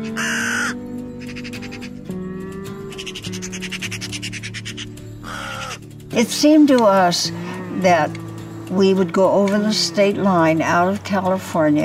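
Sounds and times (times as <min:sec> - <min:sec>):
raven cawing with harsh raspy croaks: 0:00.0 - 0:06.1
speech: 0:06.2 - 0:11.8.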